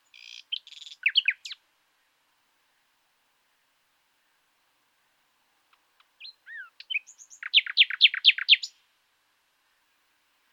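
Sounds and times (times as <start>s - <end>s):
common nightingale singing, Luscinia megarhynchos: 0.0s - 1.6s, 5.7s - 8.8s.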